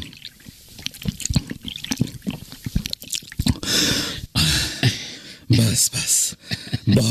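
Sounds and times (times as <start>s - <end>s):
water splashing and pouring from a water-skin: 0.0s - 3.6s
person gulping water: 0.0s - 4.5s
speech: 5.8s - 7.0s.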